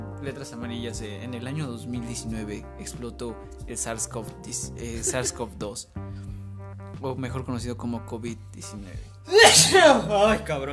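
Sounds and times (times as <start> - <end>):
speech: 0.2 - 6.1, 7.0 - 10.7
person laughing and exclaiming: 4.9 - 5.6, 9.3 - 10.2
sneeze: 9.3 - 10.0.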